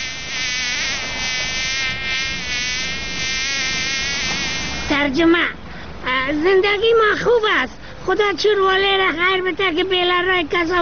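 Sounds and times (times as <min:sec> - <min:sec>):
fly buzzing: 0:00.0 - 0:05.0
speech: 0:05.0 - 0:10.8.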